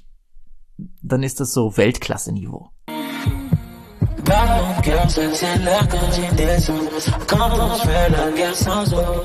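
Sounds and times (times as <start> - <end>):
speech: 1.0 - 3.4, 4.3 - 9.2
heartbeat sound in a romantic rap song beat: 3.3 - 9.2.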